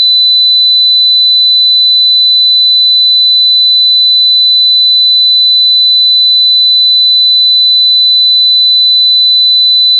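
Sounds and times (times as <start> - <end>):
4000 Hz sine tone: 0.0 - 9.9.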